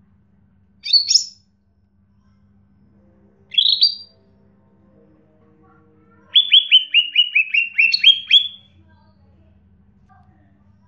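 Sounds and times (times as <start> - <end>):
bird chirping short bright buzzy upslurred notes: 3.5 - 4.2, 6.3 - 8.6.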